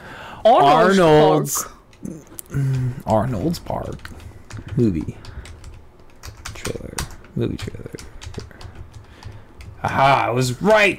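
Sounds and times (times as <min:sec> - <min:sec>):
speech: 0:00.4 - 0:05.3, 0:07.4 - 0:08.0, 0:09.8 - 0:10.9
typing on a computer keyboard to enter a search: 0:01.9 - 0:10.0.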